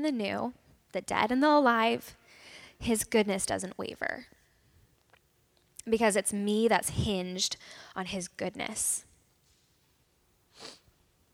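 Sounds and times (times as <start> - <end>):
speech: 0.0 - 2.2, 2.8 - 4.4, 5.8 - 9.1
person sniffling: 10.5 - 10.9.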